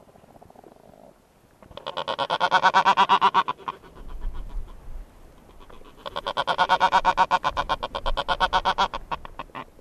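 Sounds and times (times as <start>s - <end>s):
Black-browed albatross calls: 1.7s - 4.8s, 5.4s - 9.7s
speech: 2.5s - 3.4s.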